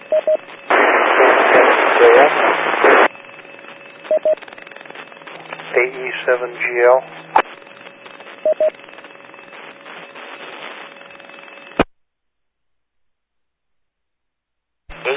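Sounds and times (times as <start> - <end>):
band-limited radio static from an unreadable transmission: 0.0 - 11.8, 14.9 - 15.1
brief beeps: 4.1 - 4.4, 8.4 - 8.7
speech: 6.3 - 7.3.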